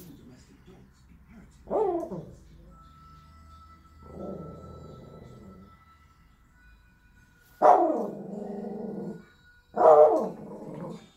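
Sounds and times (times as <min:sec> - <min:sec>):
Spitz dog giving sharp barks: 0:01.7 - 0:02.3, 0:07.6 - 0:08.2, 0:09.8 - 0:10.4
faint steady high tone: 0:02.5 - 0:11.1.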